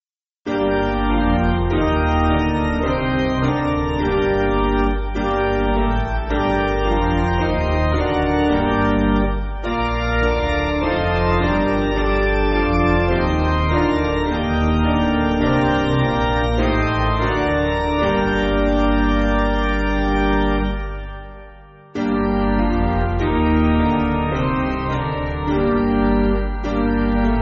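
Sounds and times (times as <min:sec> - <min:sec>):
piano piece: 0:00.5 - 0:27.4.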